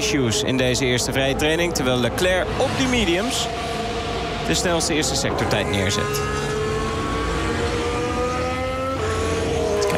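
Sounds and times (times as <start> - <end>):
Ferrari Formula 1 car engine onboard during first free practice: 0.0 - 9.9
speech: 0.1 - 3.9, 4.5 - 6.5.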